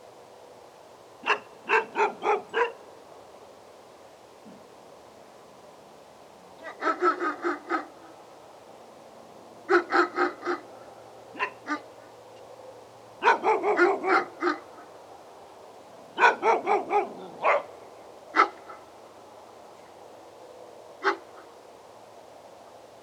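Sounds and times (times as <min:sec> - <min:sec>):
dogs barking: 0:01.2 - 0:02.8, 0:06.6 - 0:08.0, 0:09.7 - 0:10.7, 0:11.3 - 0:12.0, 0:13.2 - 0:14.9, 0:16.2 - 0:18.9, 0:21.0 - 0:21.5.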